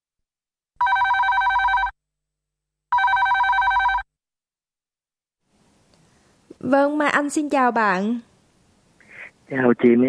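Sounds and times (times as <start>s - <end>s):
telephone ringing for incoming call: 0.8s - 2.0s, 2.9s - 4.1s
speech: 6.6s - 8.3s, 9.5s - 10.0s.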